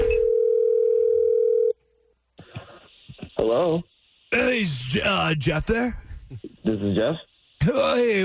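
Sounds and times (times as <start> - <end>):
telephone dial tone: 0.2 - 1.7
faint burst of noise: 2.1 - 8.2
speech: 3.4 - 8.2.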